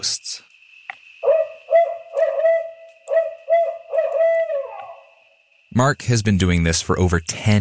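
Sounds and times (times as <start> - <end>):
speech: 0.0 - 0.5, 5.8 - 7.5
steady tone: 0.0 - 5.9
recorded barred owl hoots played through speakers: 1.2 - 5.1.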